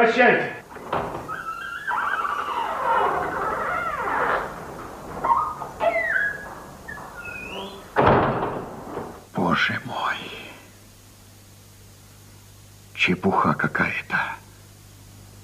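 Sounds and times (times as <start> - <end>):
speech: 0.0 - 1.0, 13.0 - 14.4
door hinges creaking: 0.6 - 9.3.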